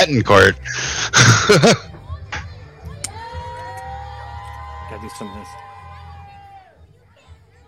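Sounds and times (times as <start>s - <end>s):
speech: 0.0s - 1.9s, 5.1s - 5.6s
laughter: 0.6s - 2.4s
crowd of kids cheering at a wrestling event: 2.1s - 7.6s.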